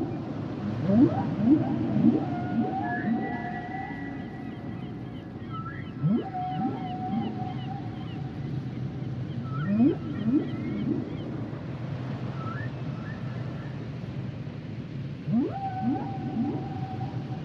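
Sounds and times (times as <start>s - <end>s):
low water noise: 0.0s - 17.4s
humpback whale song: 0.7s - 8.3s, 9.4s - 11.1s, 15.3s - 17.4s.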